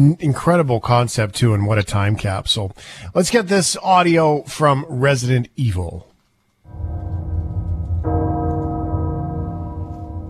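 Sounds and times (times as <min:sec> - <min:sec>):
speech: 0:00.0 - 0:06.1
deep heavy castle bell tolling: 0:06.7 - 0:10.2.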